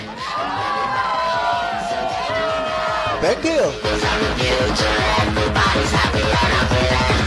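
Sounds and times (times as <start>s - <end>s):
crowd screaming and cheering at a late-night DJ party: 0.0s - 4.3s
speech: 3.2s - 7.1s.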